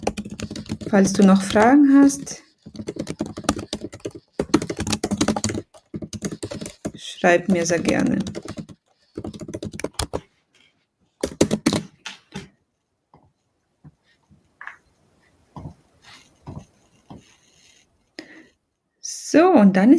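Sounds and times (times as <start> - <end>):
typing on a computer keyboard: 0.0 - 10.2, 11.2 - 12.5
speech: 0.9 - 2.5, 7.2 - 8.4, 19.7 - 19.9.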